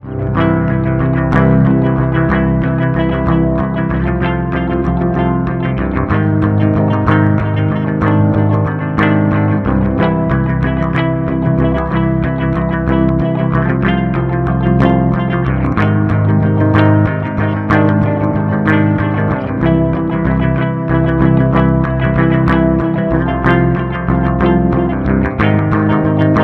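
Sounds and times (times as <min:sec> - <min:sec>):
warm guitar: 0:00.0 - 0:26.4.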